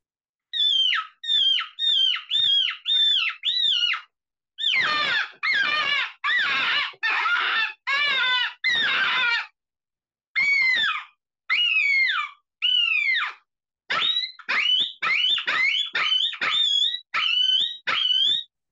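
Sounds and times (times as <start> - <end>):
handmade bite reed call blown by hand imitating a bird: 0.6 - 9.5, 10.4 - 18.5.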